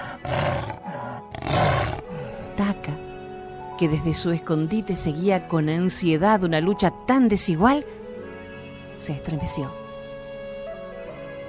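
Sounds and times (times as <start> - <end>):
jaguar roaring fiercely: 0.0 - 2.5
speech: 2.6 - 3.0, 3.8 - 8.0, 9.0 - 9.8.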